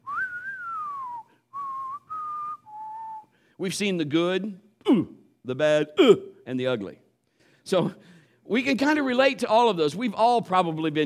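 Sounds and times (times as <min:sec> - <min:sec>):
whistled spaghetti Western-style melody: 0:00.0 - 0:03.4
speech: 0:03.6 - 0:07.0, 0:07.6 - 0:11.0.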